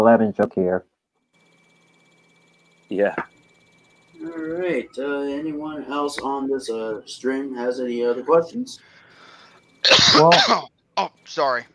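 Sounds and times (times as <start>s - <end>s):
speech: 0.0s - 0.9s, 2.9s - 3.3s, 4.2s - 8.9s, 9.8s - 11.7s
loud harsh raspy throaty cough: 9.8s - 10.7s.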